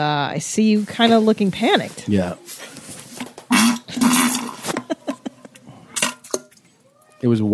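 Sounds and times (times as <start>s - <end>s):
speech: 0.0s - 2.8s, 7.2s - 7.5s
voice imitating a fart: 3.5s - 4.8s
laughter: 4.6s - 5.9s.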